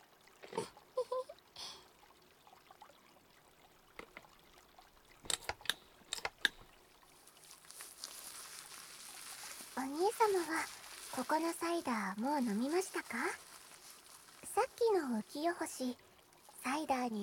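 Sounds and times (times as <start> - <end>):
wet crackles and sharp pops of foam: 5.2 - 16.8
carbonated bubbly foam fizzing while washing someone's back: 7.2 - 17.2
speech: 10.2 - 13.4, 14.6 - 16.0, 16.6 - 17.2.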